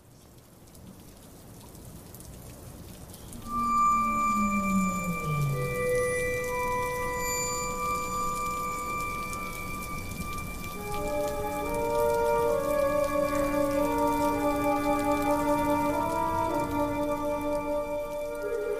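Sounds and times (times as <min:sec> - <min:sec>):
steady light rain pattering outside: 0:00.0 - 0:18.7
gentle sustained musical tones: 0:03.3 - 0:18.7.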